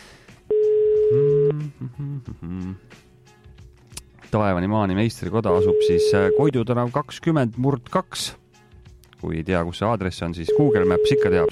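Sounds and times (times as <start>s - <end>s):
telephone tone while placing a call: 0.5s - 1.6s, 5.6s - 6.5s, 10.5s - 11.5s
speech: 1.8s - 3.0s, 4.3s - 8.4s, 9.2s - 11.5s.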